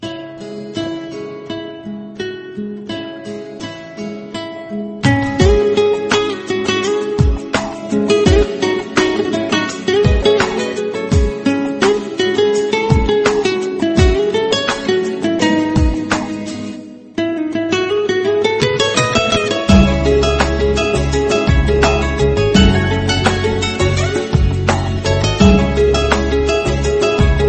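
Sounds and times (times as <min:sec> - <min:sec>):
guitar melody ringtone: 0:00.0 - 0:27.4.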